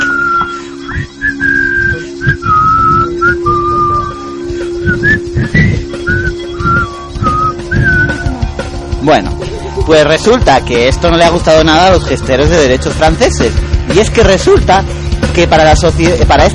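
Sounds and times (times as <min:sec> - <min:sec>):
film character whistling a tune: 0:00.0 - 0:08.5
steady low hum: 0:00.0 - 0:14.0
rumble: 0:00.9 - 0:14.8
speech: 0:09.1 - 0:16.5.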